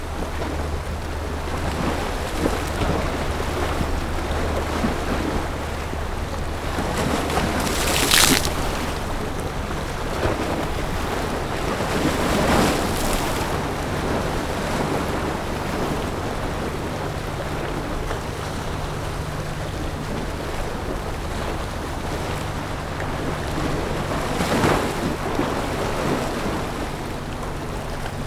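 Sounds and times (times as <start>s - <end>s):
jet boat cruising outdoors: 0.0s - 28.2s.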